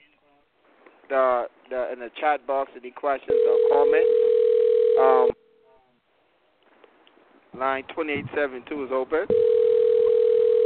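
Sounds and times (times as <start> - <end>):
speech: 1.1 - 4.4, 5.0 - 5.4, 7.6 - 9.6
telephone tone on a call-in line: 3.3 - 5.4, 9.3 - 10.6.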